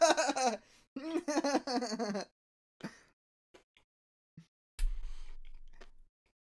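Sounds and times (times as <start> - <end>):
person humming and laughing: 0.0 - 2.3.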